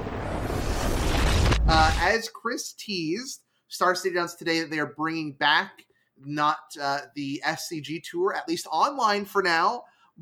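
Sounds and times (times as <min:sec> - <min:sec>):
explosion sound effect played in reverse: 0:00.0 - 0:02.1
speech: 0:01.7 - 0:10.2.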